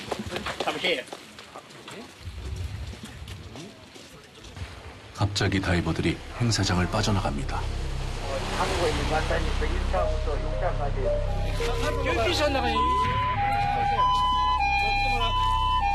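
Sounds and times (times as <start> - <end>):
speech: 0.2 - 1.2, 5.3 - 7.9, 8.6 - 13.2
ambulance siren wailing at the seaside: 11.2 - 15.9.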